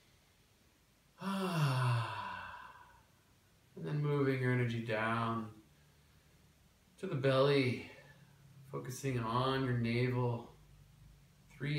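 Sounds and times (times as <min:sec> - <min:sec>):
deep breath released as a long voiced sigh during a guided meditation: 0:01.2 - 0:03.1
speech: 0:04.9 - 0:05.6, 0:07.0 - 0:07.9, 0:08.7 - 0:10.5, 0:11.6 - 0:11.7.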